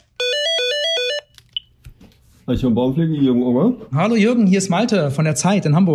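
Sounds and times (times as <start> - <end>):
outgoing phone call ringing tone: 0.0 - 1.3
speech: 2.5 - 5.9.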